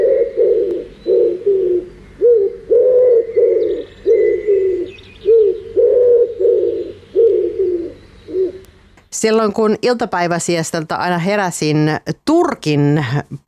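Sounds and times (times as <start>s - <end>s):
wood pigeon cooing: 0.0s - 8.7s
faint birdsong: 0.0s - 10.8s
speech: 9.2s - 13.4s.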